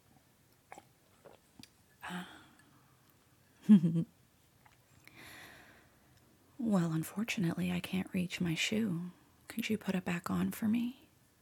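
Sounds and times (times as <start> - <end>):
person sipping a cold mocha drink: 0.7 - 2.8
speech: 3.7 - 4.2, 6.7 - 11.0.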